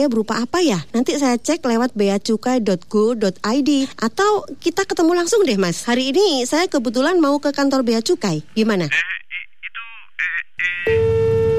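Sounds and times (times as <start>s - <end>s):
speech: 0.0s - 9.2s, 10.2s - 11.0s
voice-like bursts on a telephone call: 9.7s - 11.0s
steady electronic phone tone after a call is hung up: 10.8s - 11.5s.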